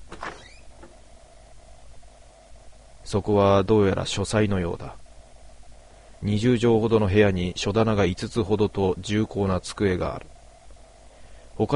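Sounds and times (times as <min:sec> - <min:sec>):
door to the next room creaking open: 0:00.0 - 0:01.0
faint lingering squeak: 0:00.2 - 0:00.8
speech: 0:03.1 - 0:05.0, 0:06.2 - 0:10.3, 0:11.6 - 0:11.7.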